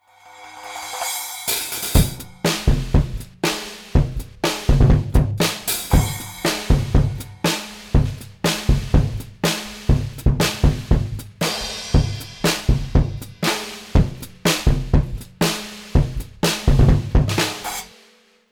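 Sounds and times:
dry kick drum recorded with FET microphone: 0:02.0 - 0:17.9.

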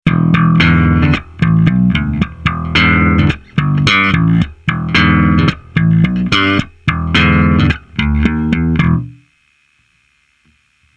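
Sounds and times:
J-Bass bass guitar: 0:00.0 - 0:09.2.

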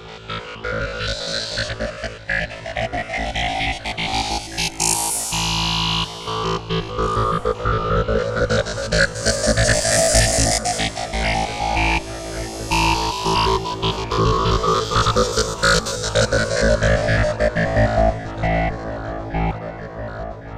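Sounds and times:
wavetable synthesizer: 0:00.1 - 0:20.5.

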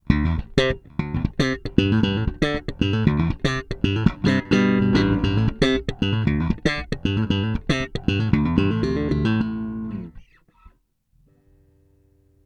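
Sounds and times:
bass slap on middle bridge: 0:00.4 - 0:10.1.

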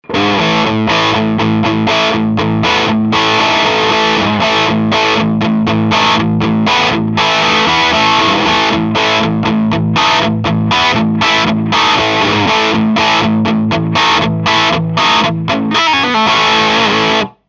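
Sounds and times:
dry crunch rhythm: 0:00.2 - 0:17.4.

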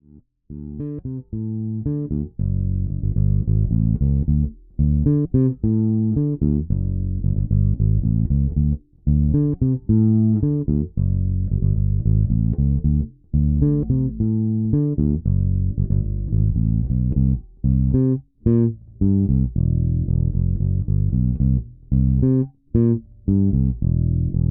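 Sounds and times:
funk guitar playing: 0:00.5 - 0:24.5.

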